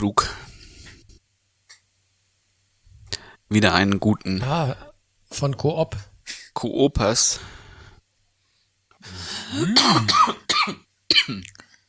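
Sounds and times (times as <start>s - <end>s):
speech: 0.0s - 0.3s, 3.5s - 7.6s, 9.0s - 11.6s
person clearing throat: 9.1s - 11.6s
person coughing in a rough strained fit: 9.1s - 11.6s.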